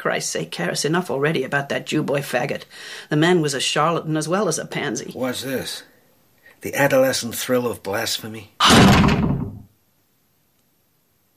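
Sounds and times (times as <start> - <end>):
speech: 0.0 - 5.9, 6.6 - 9.4
wooden closet door swinging open: 8.6 - 9.6.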